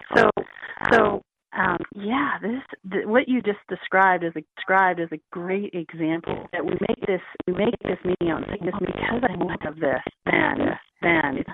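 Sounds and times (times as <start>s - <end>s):
tinny voice over a breaking-up phone line: 0.0s - 11.5s
speech: 2.4s - 11.5s.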